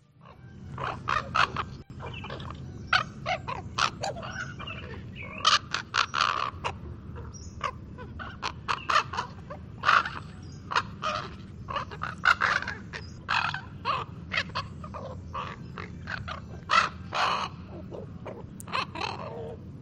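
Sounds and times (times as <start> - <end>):
low rumbling background: 0.0 - 19.8
young ravens gabbling with croaks and squawks: 0.0 - 19.8.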